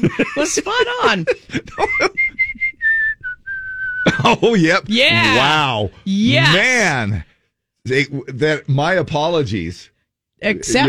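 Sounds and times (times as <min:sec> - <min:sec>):
speech: 0:00.0 - 0:02.4, 0:04.1 - 0:07.3, 0:07.9 - 0:10.8
laughter: 0:00.0 - 0:02.9, 0:04.0 - 0:06.9
person whistling in imitation of a bird's monotone chirp: 0:01.8 - 0:04.2.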